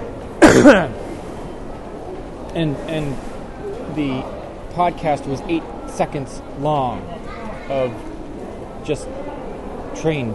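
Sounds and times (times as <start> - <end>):
throaty cough: 0.4 - 1.0
speech: 0.5 - 1.0, 2.6 - 3.3, 4.0 - 8.1, 8.8 - 9.2, 10.0 - 10.3.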